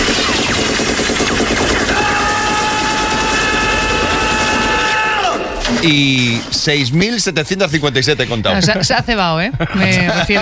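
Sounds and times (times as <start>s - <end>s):
machine gun fire in an action film: 0.0s - 6.7s
speech: 5.8s - 10.3s
laughter: 8.4s - 10.3s.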